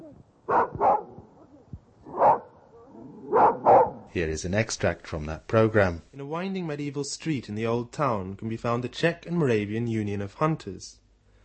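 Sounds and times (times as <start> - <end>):
fox terrier barking in a park in Prague: 0.5 - 1.2, 2.1 - 2.6, 3.3 - 4.1
speech: 4.1 - 11.0.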